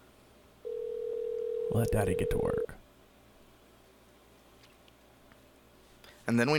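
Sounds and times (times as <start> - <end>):
phone ringing tone: 0.6 - 2.7
speech: 1.8 - 2.8, 6.3 - 6.5.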